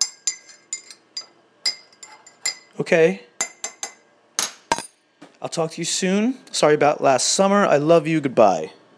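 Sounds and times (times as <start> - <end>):
spoon stirring coffee in a cup: 0.0 - 2.7
speech: 2.8 - 3.3, 5.4 - 8.8.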